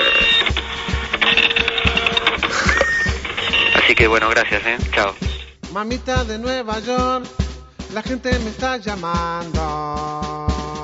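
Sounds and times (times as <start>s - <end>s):
printer printing texts: 0.0s - 3.9s
speech: 4.0s - 10.4s.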